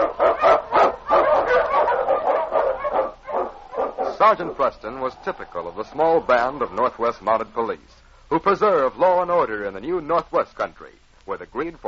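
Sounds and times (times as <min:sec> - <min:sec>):
husky sled dogs barking and yipping in storm and snow in the Yukon: 0:00.0 - 0:07.0
speech: 0:04.2 - 0:11.8.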